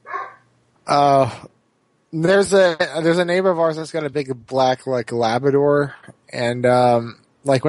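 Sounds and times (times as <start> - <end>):
dog barking with a yip and a loud bark: 0.0 - 0.4
speech: 0.9 - 7.6.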